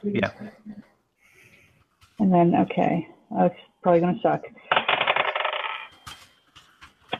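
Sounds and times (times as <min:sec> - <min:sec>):
speech: 0:00.0 - 0:00.6, 0:02.2 - 0:04.6
dice rattling in a tabletop role-playing game roll: 0:04.8 - 0:05.9.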